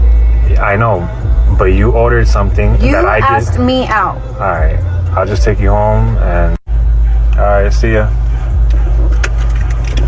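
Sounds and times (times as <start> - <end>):
steady low car engine rumble: 0.0 - 10.0
speech: 0.6 - 6.6, 7.4 - 8.2.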